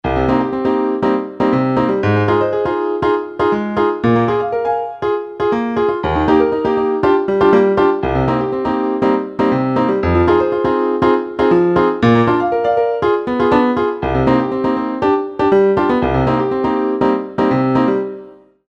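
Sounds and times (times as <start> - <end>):
pop piano arpeggio in 4/4: 0.0 - 18.6.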